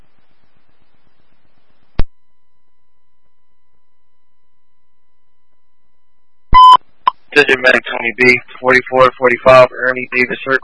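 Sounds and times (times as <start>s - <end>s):
electronic beep tone: 6.6s - 6.8s
speech: 7.4s - 10.6s.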